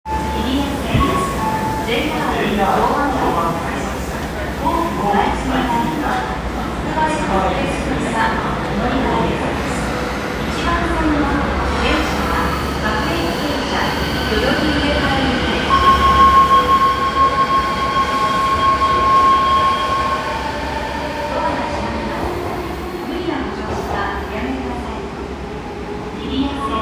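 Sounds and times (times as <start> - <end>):
Odakyu train at Kita-Senju on the Chiyoda Line: 0.1 - 26.7.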